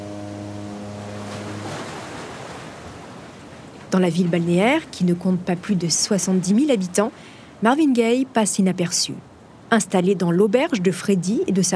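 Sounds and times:
low ferry engine drone: 0.0s - 2.2s
sea waves during a ferry crossing to Belgium: 0.0s - 11.7s
wind during a ferry crossing to Belgium: 0.0s - 11.7s
speech: 3.9s - 11.7s.

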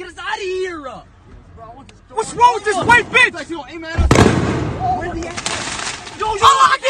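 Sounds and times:
speech: 2.2s - 6.8s
gunshot or firework bangs: 4.0s - 5.8s
agitated voices shouting: 6.2s - 6.8s.

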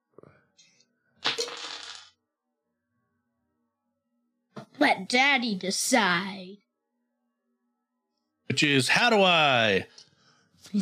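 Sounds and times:
dice rolled clattering across a hard surface: 1.2s - 2.1s
speech: 5.0s - 6.6s, 8.6s - 10.0s, 10.6s - 10.8s.

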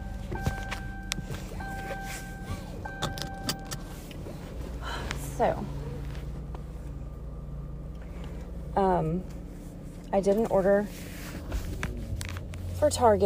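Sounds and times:
car chime tones: 0.0s - 3.9s
car engine starting and rumbling: 0.0s - 13.2s
keys jingling: 2.5s - 3.9s
speech: 5.4s - 5.8s, 9.0s - 9.4s, 10.1s - 11.1s, 12.8s - 13.2s.

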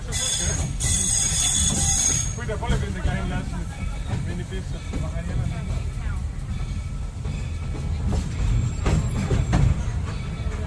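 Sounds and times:
train pulling into a station: 0.0s - 10.6s
speech: 4.5s - 5.8s.

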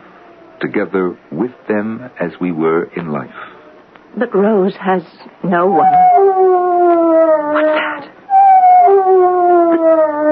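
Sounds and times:
speech: 0.6s - 3.6s, 4.2s - 6.1s
dog howling: 5.7s - 10.3s.

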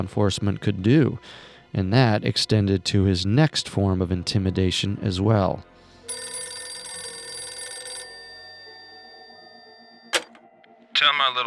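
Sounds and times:
speech: 0.0s - 5.7s
telephone bell ringing: 6.1s - 10.4s.

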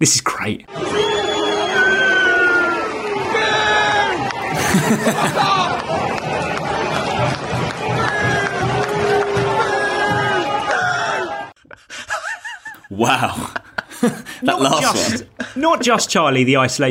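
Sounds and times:
speech: 0.0s - 1.2s, 4.7s - 5.9s, 13.0s - 16.8s
large stadium crowd of football fans booing: 0.7s - 11.6s
laughter: 4.3s - 7.3s, 11.6s - 16.4s.

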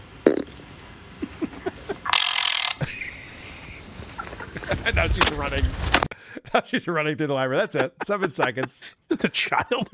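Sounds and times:
loud amplified fart noise: 0.2s - 0.5s
laughter: 1.2s - 2.1s, 2.8s - 5.0s, 6.2s - 9.9s
speech: 4.8s - 9.9s.

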